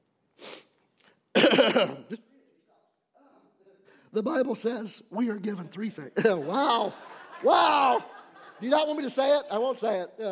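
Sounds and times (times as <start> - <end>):
person coughing: 1.3 - 2.3
speech: 1.5 - 2.3, 4.1 - 10.3
laughter: 6.1 - 9.7.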